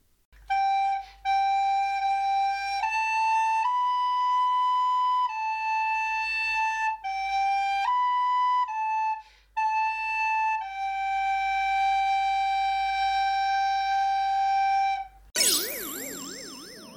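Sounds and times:
recorder flute playing a simple melody: 0.4 - 16.9
warbling sound: 15.4 - 16.9.

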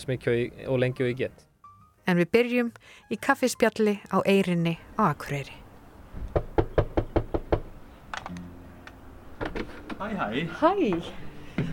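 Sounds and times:
speech: 0.0 - 1.5, 2.1 - 5.6, 10.0 - 11.7
sharp knocks on a door: 6.2 - 7.7.

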